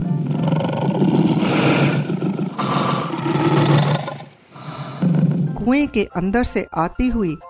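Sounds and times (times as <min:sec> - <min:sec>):
lion roaring loudly and close with echo: 0:00.0 - 0:05.6
speech: 0:05.7 - 0:07.4.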